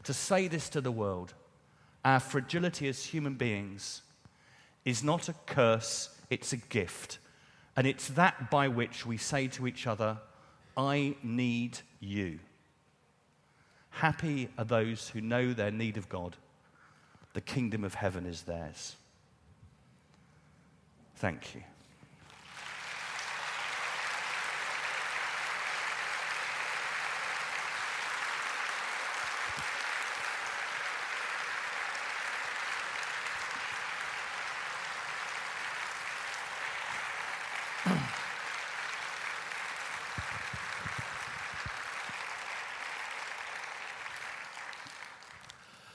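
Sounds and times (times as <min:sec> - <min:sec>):
speech: 0:00.0 - 0:01.4, 0:02.0 - 0:04.1, 0:04.8 - 0:07.2, 0:07.8 - 0:12.5, 0:13.9 - 0:16.4, 0:17.3 - 0:19.0, 0:21.2 - 0:21.7
audience applause: 0:22.2 - 0:45.7.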